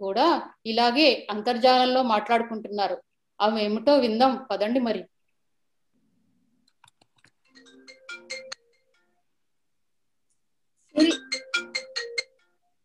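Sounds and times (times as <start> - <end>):
speech: 0.1 - 5.1
mobile phone ringing with a melodic ringtone: 7.5 - 9.2, 11.0 - 12.8.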